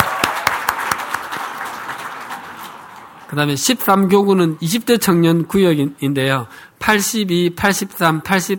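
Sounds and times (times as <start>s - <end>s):
audience applauding: 0.0s - 3.3s
speech: 3.3s - 8.5s.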